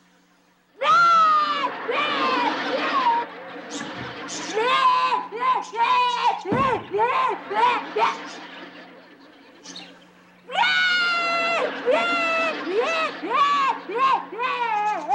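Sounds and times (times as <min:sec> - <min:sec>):
child crying and wailing in high-pitched sobs: 0:00.8 - 0:03.3, 0:04.4 - 0:08.3, 0:10.5 - 0:15.1
laughter: 0:00.9 - 0:15.1.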